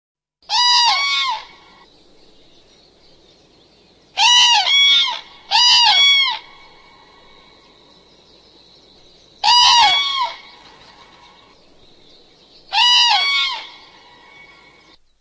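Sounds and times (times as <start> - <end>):
common crane trumpeting calls: 0.5 - 1.9, 4.1 - 7.7, 9.4 - 12.0, 12.6 - 15.0
faint steady background hiss: 0.5 - 15.1.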